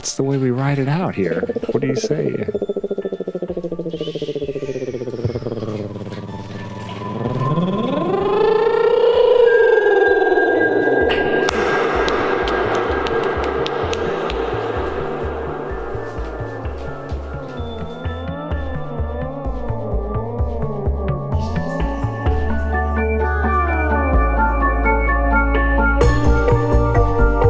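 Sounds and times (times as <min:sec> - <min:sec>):
speech: 0:00.0 - 0:02.8, 0:03.7 - 0:04.7
swirling atmospheric synth noises drenched in reverb: 0:00.0 - 0:27.4.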